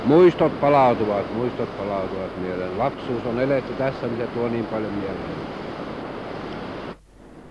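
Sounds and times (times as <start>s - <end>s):
rushing river rapids roaring: 0.0s - 7.0s
quiet hiss: 0.0s - 7.4s
speech: 0.1s - 5.6s.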